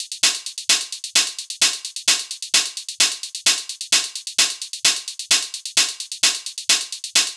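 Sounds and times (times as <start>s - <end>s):
techno hi-hats at 130 bpm: 0.0s - 7.3s.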